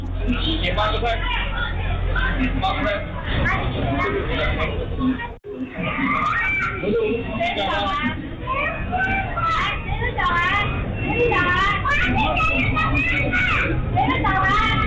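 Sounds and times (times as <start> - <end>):
children's voices: 0.0 - 14.8
many diners chattering in a busy restaurant: 0.0 - 14.8.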